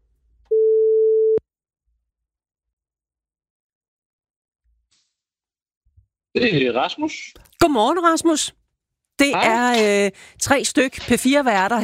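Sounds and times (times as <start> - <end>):
steady mid-pitched telephone ringing tone: 0.5 - 1.4
speech: 6.4 - 8.6, 9.2 - 11.8.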